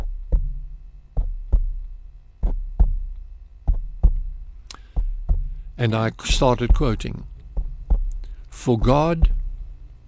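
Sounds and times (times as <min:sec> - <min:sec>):
finger tapping on a microphone imitating a heartbeat: 0:00.0 - 0:05.6, 0:06.3 - 0:10.0
speech: 0:05.8 - 0:07.3, 0:08.6 - 0:09.4.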